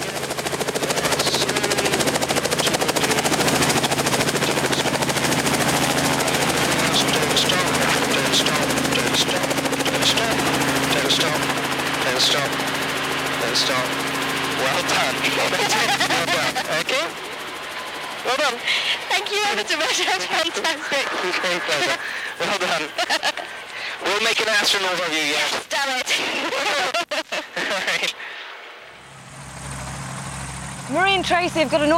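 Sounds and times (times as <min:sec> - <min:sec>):
helicopter engine and rotors descending for an emergency landing: 0:00.0 - 0:31.9
laughter: 0:14.6 - 0:17.1, 0:18.6 - 0:24.1, 0:26.1 - 0:28.5
speech: 0:24.6 - 0:25.6, 0:31.2 - 0:31.9.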